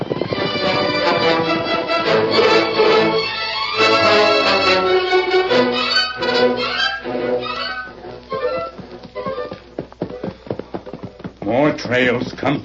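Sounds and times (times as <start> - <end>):
galloping horse hooves: 0.0 - 12.6
horse whinnying: 5.8 - 9.6
speech: 11.9 - 12.6.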